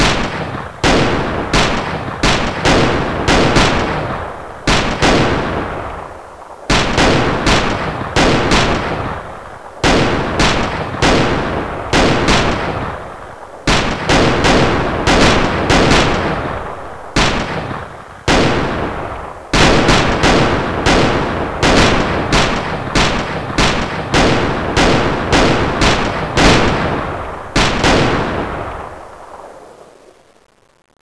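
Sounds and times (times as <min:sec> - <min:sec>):
gunshots: 0:00.0 - 0:30.0.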